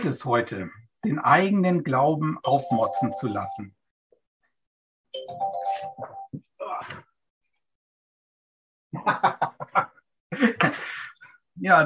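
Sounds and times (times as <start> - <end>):
speech: 0.0 - 3.8, 5.2 - 7.0, 8.9 - 11.8
mobile phone ringing with a short electronic chime melody: 5.2 - 6.3
laughter: 9.0 - 10.8.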